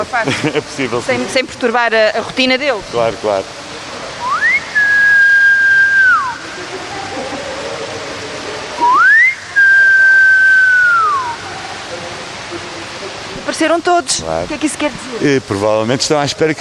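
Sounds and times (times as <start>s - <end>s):
speech: 0.0s - 3.6s, 13.6s - 16.5s
rushing water: 0.0s - 16.5s
laughter: 0.2s - 1.0s, 6.2s - 9.0s
keeper whistling to call animals: 4.2s - 6.4s, 8.8s - 11.4s.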